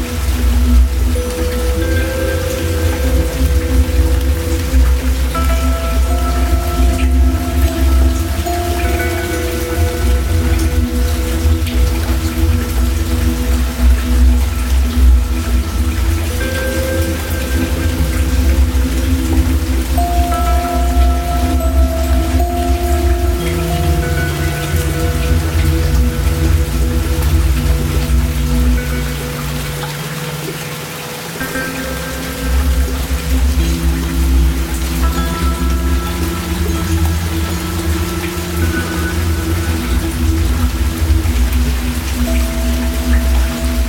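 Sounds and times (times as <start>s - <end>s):
heavy rain: 0.0s - 43.8s.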